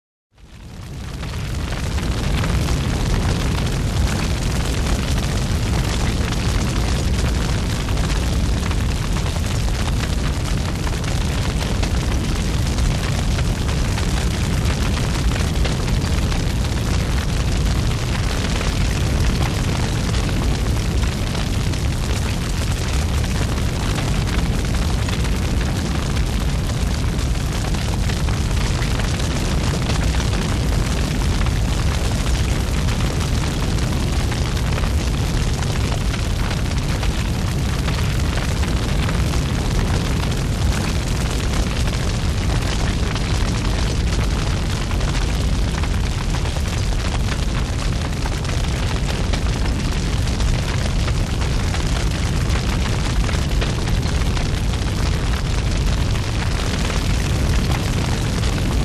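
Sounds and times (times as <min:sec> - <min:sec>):
big fire burning: 0:00.3 - 0:58.8.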